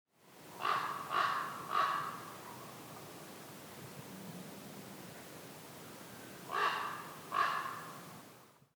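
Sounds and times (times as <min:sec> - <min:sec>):
distant common raven: 0:00.6 - 0:02.7, 0:05.8 - 0:08.1.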